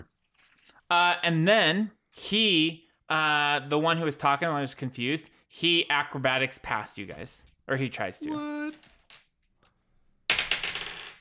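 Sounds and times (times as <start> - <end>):
speech: 0.9 - 8.9
twenty-sided die clattering across a hard tabletop: 10.3 - 11.1.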